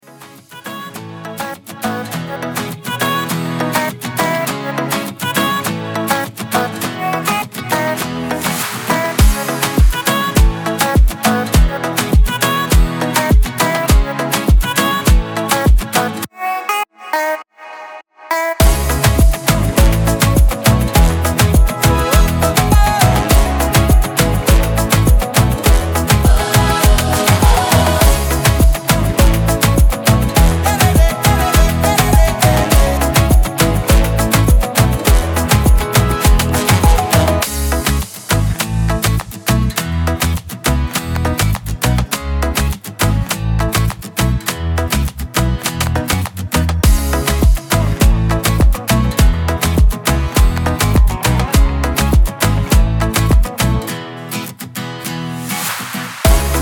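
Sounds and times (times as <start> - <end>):
afro latin music: 0.0 - 16.3, 18.4 - 56.6.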